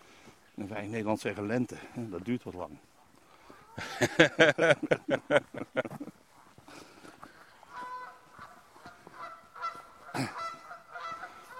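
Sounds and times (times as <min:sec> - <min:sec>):
speech: 0:00.6 - 0:02.9, 0:03.8 - 0:06.2
laughter: 0:03.8 - 0:06.2
Canada geese honking: 0:07.2 - 0:11.5.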